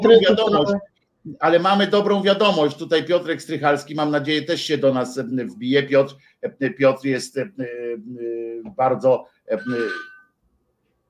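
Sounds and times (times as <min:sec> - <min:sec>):
speech: 0:00.0 - 0:10.1
telephone ringing: 0:09.5 - 0:10.3.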